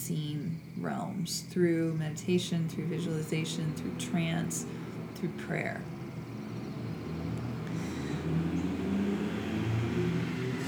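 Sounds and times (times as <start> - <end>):
speech: 0.1 - 6.0
many heavy trucks driving by on a street, heard from inside an office: 3.0 - 10.6.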